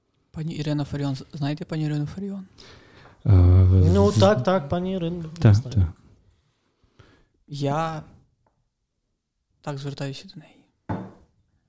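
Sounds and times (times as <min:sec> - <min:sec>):
speech: 0:00.4 - 0:06.0, 0:07.5 - 0:08.2, 0:09.6 - 0:10.6
dull wooden thud: 0:10.9 - 0:11.2.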